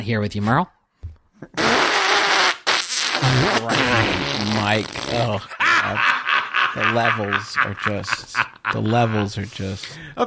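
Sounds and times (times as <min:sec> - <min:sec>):
speech: 0:00.0 - 0:00.8, 0:03.2 - 0:06.2, 0:06.8 - 0:10.2
loud raspy sputtering fart noises: 0:01.4 - 0:05.4
laughter: 0:05.1 - 0:09.8.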